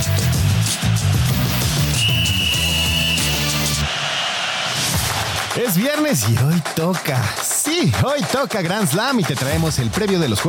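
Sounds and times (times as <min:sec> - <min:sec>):
loud upbeat music: 0:00.0 - 0:10.4
noisy crowd-like sound: 0:00.0 - 0:10.4
referee's starting whistle blast: 0:01.5 - 0:04.4
speech: 0:05.8 - 0:10.4.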